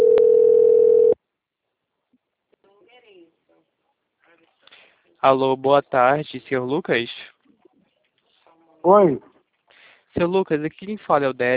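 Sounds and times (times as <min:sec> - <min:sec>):
telephone dial tone while placing a call: 0:00.0 - 0:01.2
speech: 0:05.2 - 0:07.3, 0:08.8 - 0:09.3, 0:10.1 - 0:11.5.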